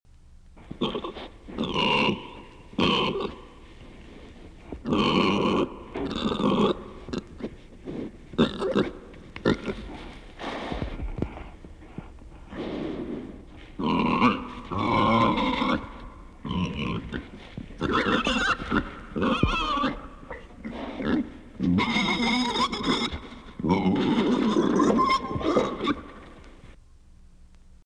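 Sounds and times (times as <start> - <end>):
pigs: 0.8 - 3.5, 4.8 - 7.4, 8.4 - 11.2, 13.8 - 26.2.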